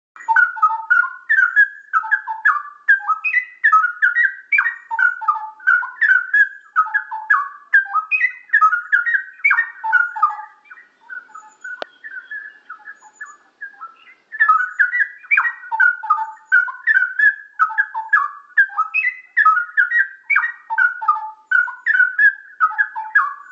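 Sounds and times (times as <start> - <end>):
cucak rowo straw-headed bulbul singing: 0.2 - 23.5.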